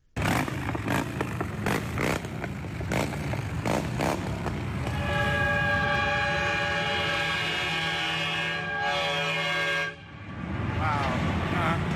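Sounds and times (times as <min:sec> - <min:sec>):
motorcycle procession engines rumbling: 0:00.0 - 0:11.9
very loud truck horn in a motorcycle procession: 0:04.8 - 0:10.8.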